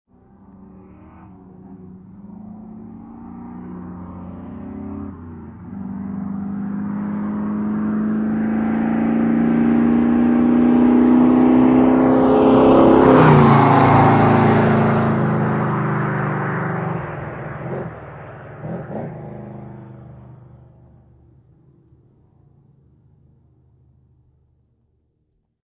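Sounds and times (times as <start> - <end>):
muscle car passing fast at 100 MPH: 0.2 - 21.2.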